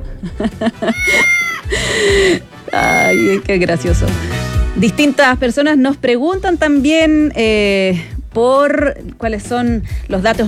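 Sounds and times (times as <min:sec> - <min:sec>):
laughter: 0:00.0 - 0:03.5
speech: 0:00.2 - 0:10.4
cat meowing: 0:00.9 - 0:01.6, 0:02.7 - 0:03.5.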